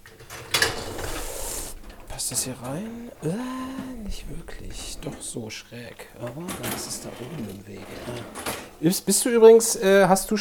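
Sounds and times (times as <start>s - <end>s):
dishwasher door clack on opening: 0.0s - 9.1s
dishwasher rack rolling and rattling as it slides out: 0.0s - 10.3s
speech: 2.2s - 10.3s.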